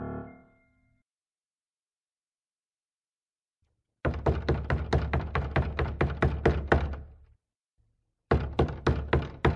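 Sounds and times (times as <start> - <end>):
loud rapid knocking on a door: 4.0 - 7.2, 8.3 - 9.5.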